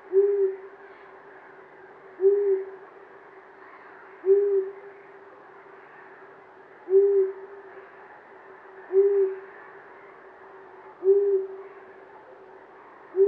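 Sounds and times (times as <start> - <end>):
long-eared owl giving low hoo notes: 0.0 - 0.8, 2.2 - 2.8, 3.7 - 5.0, 6.9 - 7.9, 8.8 - 9.8, 11.0 - 11.9, 13.1 - 13.2.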